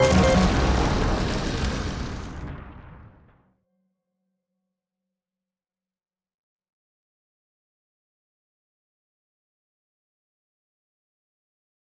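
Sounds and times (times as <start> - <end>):
slot machine scoring: 0.0 - 2.1.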